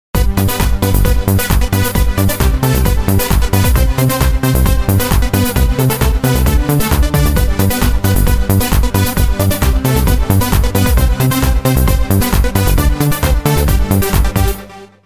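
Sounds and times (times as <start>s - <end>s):
Christmas dance music: 0.2s - 14.9s.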